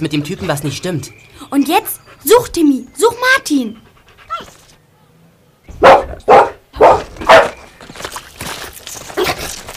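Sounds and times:
speech: 0.0s - 4.6s
dog barking: 5.8s - 7.6s
soft rustling and movement: 7.0s - 9.7s.

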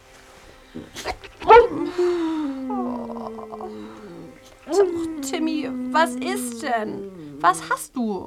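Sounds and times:
speech: 0.7s - 1.3s, 5.3s - 8.2s
dog yelping at night near the coast: 1.0s - 7.8s.

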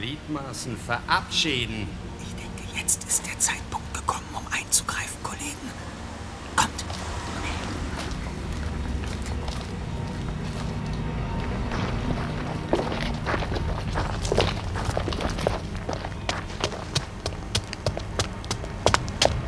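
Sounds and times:
steady low rumble: 0.0s - 19.4s
speech: 0.1s - 2.2s, 2.8s - 5.9s
footsteps behind a door: 5.4s - 19.4s.

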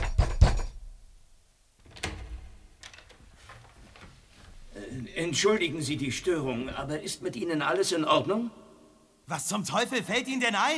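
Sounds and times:
soft door clunks: 1.8s - 4.8s
speech: 5.2s - 8.6s, 9.3s - 10.7s.

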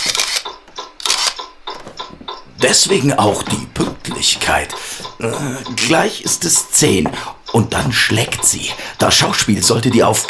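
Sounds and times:
camera taking a photo with rattling mechanical clicks and whirs: 0.0s - 1.4s
speech: 2.6s - 10.2s.

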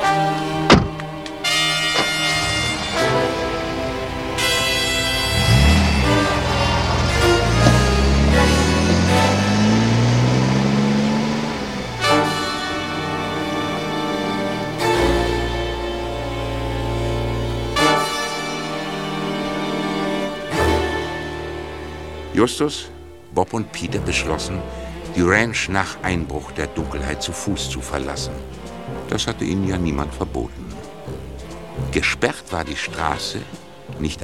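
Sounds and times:
continuous sustained tonal sound: 0.0s - 32.2s
car engine pulling away toward the road: 0.0s - 34.2s
dull thud: 0.6s - 3.0s
speech: 22.4s - 30.8s, 31.9s - 34.2s.

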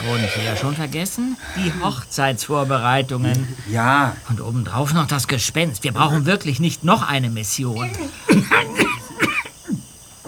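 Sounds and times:
throat clearing: 0.0s - 4.3s, 7.8s - 10.2s
harsh hacking coughs from someone who swallowed too large a sip of a drink: 0.0s - 4.4s, 5.9s - 6.4s, 7.8s - 10.2s
speech: 0.0s - 9.4s
laughter: 0.0s - 10.2s.

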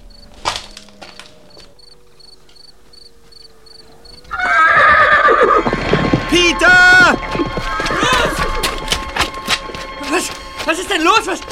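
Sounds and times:
crickets chirping: 0.0s - 11.5s
stolen horse's hooves clip-clopping on hard ground as it is led away: 0.1s - 11.5s
horse whinnying in a makeshift fenced enclosure: 4.3s - 9.1s.

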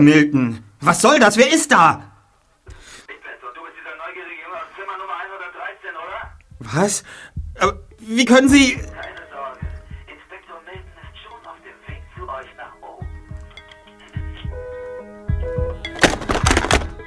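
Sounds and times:
speech: 0.0s - 2.1s, 6.6s - 9.0s
tonal sound: 6.1s - 17.0s
steady rhythmic low thumps: 6.2s - 17.0s
telephone receiver slammed down with a loud sharp clatter: 15.9s - 17.0s.

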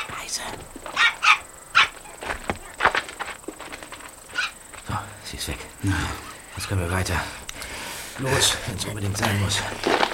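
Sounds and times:
speech: 0.4s - 0.8s, 5.4s - 7.4s, 8.2s - 10.1s
dog walked by a woman barking: 1.0s - 2.0s.

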